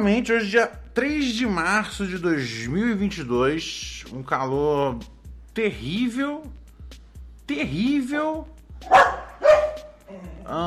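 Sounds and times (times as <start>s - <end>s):
speech: 0.0s - 6.6s, 7.5s - 9.0s, 10.1s - 10.6s
dog barking: 8.8s - 10.4s.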